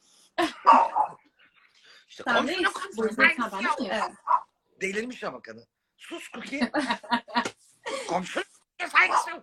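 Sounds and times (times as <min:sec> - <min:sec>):
single short sharp dog bark: 0:00.6 - 0:01.2, 0:03.6 - 0:04.5, 0:09.0 - 0:09.4
speech: 0:02.2 - 0:07.4, 0:08.1 - 0:08.5
laughter: 0:06.2 - 0:08.3.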